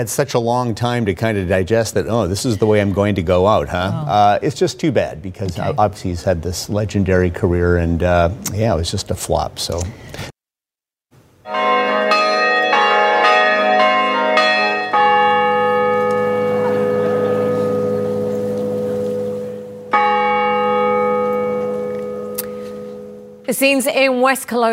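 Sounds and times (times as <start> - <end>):
speech: 0.0 - 10.3, 23.5 - 24.7
large winery bells pealing at sunset in West Kelowna: 11.5 - 23.8.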